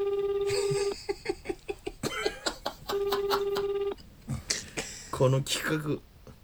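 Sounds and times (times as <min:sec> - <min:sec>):
phone ringback tone on an outgoing call: 0:00.0 - 0:01.0, 0:02.6 - 0:04.0
laughter: 0:00.5 - 0:05.2
short pulsing phone beeps: 0:02.9 - 0:04.0
speech: 0:05.2 - 0:06.1.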